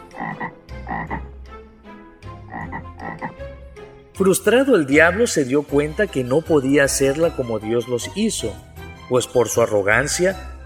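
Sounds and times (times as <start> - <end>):
toad croaking: 0.0 - 1.4, 2.4 - 3.4
speech: 4.2 - 10.6.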